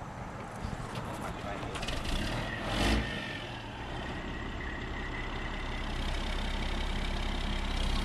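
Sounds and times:
massive moving truck engine rumbling as it pulls away from the curb: 0:00.0 - 0:08.0.

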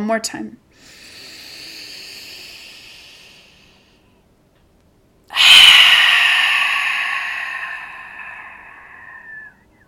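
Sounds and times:
person taking a deep grounding breath during guided breathing practice: 0:00.7 - 0:04.2, 0:05.3 - 0:09.6.

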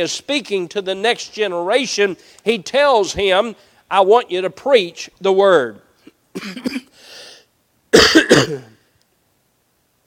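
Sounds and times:
speech: 0:00.0 - 0:07.2, 0:07.9 - 0:08.7
harsh coughing: 0:06.1 - 0:07.0, 0:07.9 - 0:08.8.

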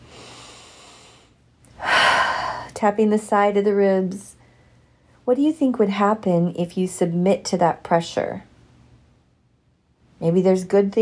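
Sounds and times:
big deep breath: 0:00.0 - 0:02.8
speech: 0:02.8 - 0:04.3, 0:05.3 - 0:08.5, 0:10.2 - 0:11.0.

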